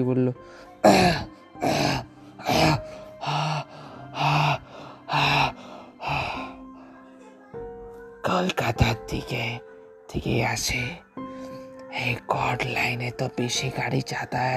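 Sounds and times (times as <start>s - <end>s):
speech: 0.0s - 2.0s, 9.1s - 11.0s, 12.0s - 14.5s
breathy gasps: 0.4s - 7.4s
man coughing: 0.8s - 2.8s.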